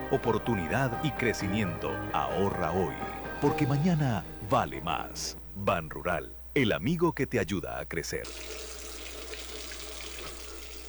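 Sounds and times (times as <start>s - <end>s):
speech: 0.1s - 8.7s
water running from a tap while dishes are washed or teeth brushed: 8.2s - 10.8s.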